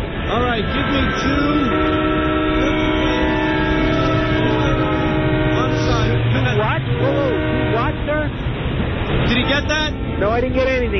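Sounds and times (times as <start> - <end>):
busy train station ambience: 0.0 - 10.9
steady droning horn-like tone: 0.1 - 8.5
speech: 0.6 - 1.8.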